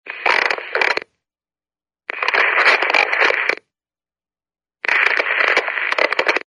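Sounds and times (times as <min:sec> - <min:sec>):
walkie talkie noise: 0:00.1 - 0:01.1, 0:02.1 - 0:03.6, 0:04.8 - 0:06.4.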